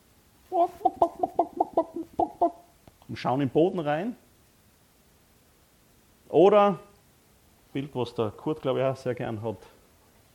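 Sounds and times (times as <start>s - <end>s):
chickens clucking: 0.5s - 2.7s
speech: 3.2s - 4.2s, 6.4s - 6.9s, 7.7s - 9.8s.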